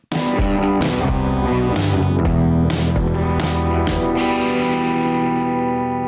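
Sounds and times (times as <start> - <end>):
short loud radio jingle of distorted effects-laden guitar music: 0.0 - 6.0.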